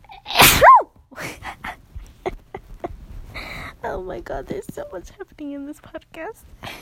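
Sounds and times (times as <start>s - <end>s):
loud sneeze: 0.2s - 0.9s
speech: 3.8s - 6.7s.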